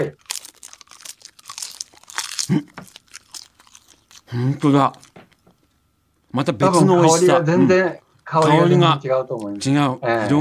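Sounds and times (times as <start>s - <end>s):
speech: 0.0s - 0.2s, 2.5s - 2.9s, 4.3s - 5.1s, 6.3s - 10.3s
high-grade Aomori nori seaweed being bitten and chewed: 0.0s - 5.4s.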